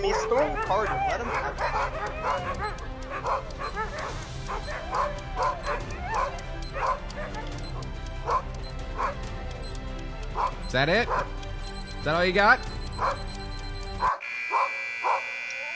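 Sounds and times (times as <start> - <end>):
speech: 0.0 - 7.5, 10.4 - 11.4, 12.0 - 13.4
dogs whimpering: 0.0 - 9.2
several dogs barking and yipping excitedly: 0.0 - 15.7
steady electronic beeping: 10.6 - 10.9, 11.6 - 14.1.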